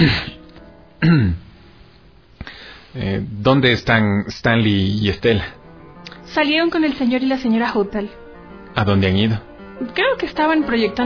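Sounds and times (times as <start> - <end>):
man giving an embarrassed cough: 0.0 - 0.4, 1.0 - 1.4
speech: 1.0 - 1.4, 2.9 - 5.6, 6.3 - 8.2, 8.8 - 11.0.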